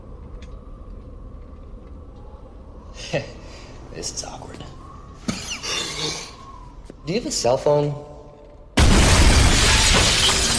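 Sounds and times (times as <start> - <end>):
speech: 3.1 - 4.8, 7.0 - 8.1
glass skylight smashing as someone crashes through it: 8.8 - 10.5.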